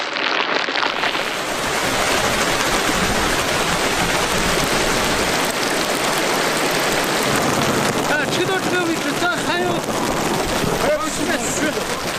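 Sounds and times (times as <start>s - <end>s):
heavy rain pouring: 0.0s - 12.1s
faint indistinct voices: 7.9s - 12.1s.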